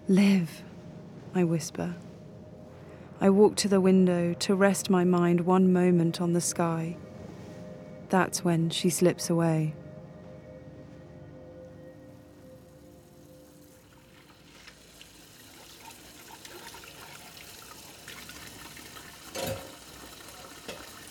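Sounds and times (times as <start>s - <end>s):
speech: 0.1s - 0.7s, 1.3s - 2.1s, 3.2s - 7.0s, 8.1s - 9.8s
dishes being washed by hand in water: 15.1s - 21.0s.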